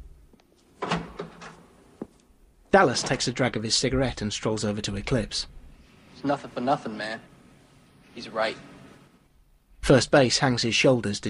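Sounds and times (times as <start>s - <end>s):
door opening and closing: 0.8s - 1.7s, 2.9s - 3.4s
speech: 2.8s - 5.6s, 6.2s - 7.3s, 8.2s - 8.7s, 9.9s - 11.2s.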